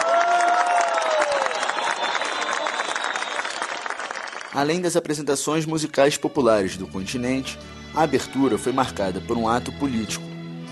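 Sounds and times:
crowd cheering: 0.0 - 4.9
large audience clapping at the opening of a gathering: 0.0 - 5.2
crowd whistles: 0.8 - 4.9
speech: 4.6 - 10.7.

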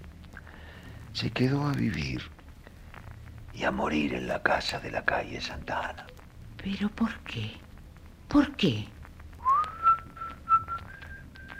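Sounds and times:
speech: 1.2 - 2.4, 3.6 - 7.6, 8.3 - 9.0
man softly whistling a slow melody while rolling a cigarette: 9.4 - 11.5.

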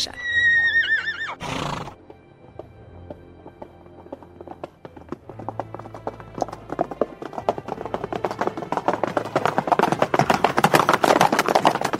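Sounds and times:
horse whinnying: 0.0 - 2.0
horse hooves clip-clopping into a gallop: 0.5 - 11.9.

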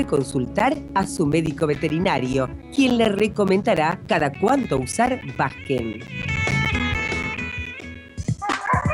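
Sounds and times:
speech: 0.0 - 6.4
neighbor's puppies barking and yipping: 8.4 - 8.9.

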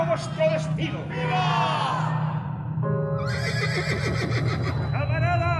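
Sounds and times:
speech: 0.2 - 2.2, 3.3 - 5.4
horse neighing: 3.3 - 4.9.

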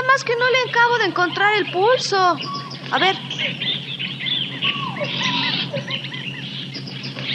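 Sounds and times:
overlapping bird calls and chirps in a dense jungle: 0.0 - 7.3
steady insect drone in a dense jungle: 0.1 - 7.3
speech: 0.2 - 4.1
squeaky monkey cries in a dense jungle: 4.6 - 6.4.

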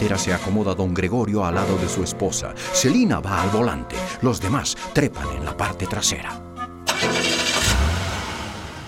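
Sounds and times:
speech: 0.0 - 6.5
truck engine starting: 6.9 - 8.8.

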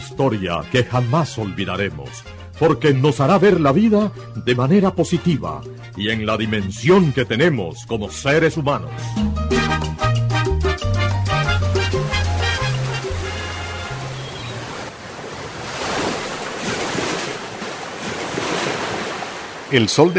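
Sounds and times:
mellow music: 0.0 - 14.6
speech: 0.1 - 9.9, 19.7 - 20.1
ocean waves at a seaport in the late afternoon: 11.8 - 20.1
gentle sea breeze at a seaport in the late afternoon: 12.1 - 20.1.

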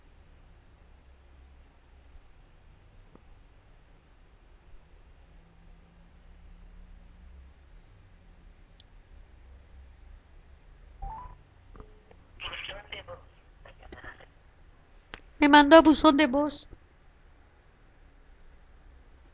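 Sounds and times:
electronic cell phone dialing tones on speakerphone: 11.0 - 11.4
speech: 15.4 - 16.7.

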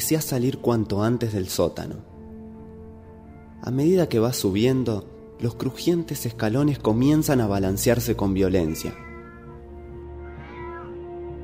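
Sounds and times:
speech: 0.1 - 2.1, 3.6 - 9.1
cat meowing: 8.4 - 11.2.

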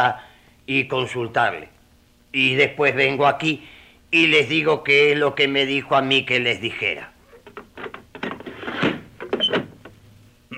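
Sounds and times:
speech: 0.0 - 7.1
door shutting: 7.3 - 10.0.

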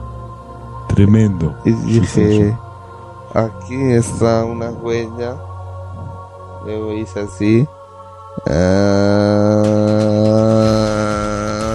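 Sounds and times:
speech: 1.0 - 2.7, 3.3 - 5.5, 6.6 - 7.8, 8.4 - 9.8
human voice imitating a machine that follows brain waves with a buzzing drone: 8.4 - 11.7.

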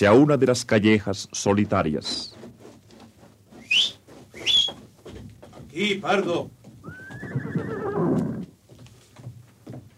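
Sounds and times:
speech: 0.0 - 2.4, 5.8 - 6.6
horse hoof clops on hard ground: 1.5 - 9.9
horse whinnying: 6.8 - 8.6.

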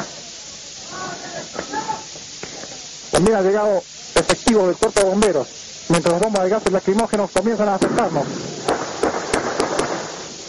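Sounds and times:
outdoor noise: 0.0 - 10.4
speech: 3.2 - 8.6
firearm gunshots: 7.8 - 10.4.

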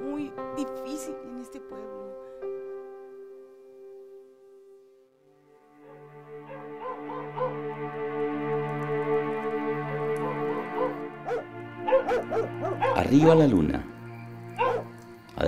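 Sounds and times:
speech: 0.2 - 2.1, 13.1 - 13.9
dogs barking and yipping in the distance at night: 5.6 - 15.4
steady humming musical drone: 5.8 - 15.4.

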